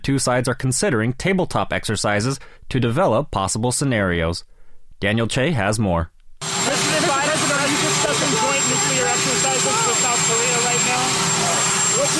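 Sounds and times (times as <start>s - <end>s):
speech: 0.1s - 6.5s
presidential helicopter landing on the South Lawn of the White House: 6.4s - 12.1s.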